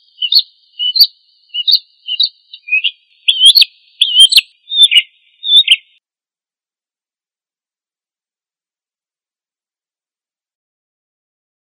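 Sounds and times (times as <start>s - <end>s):
prinia song: 0.0s - 6.0s.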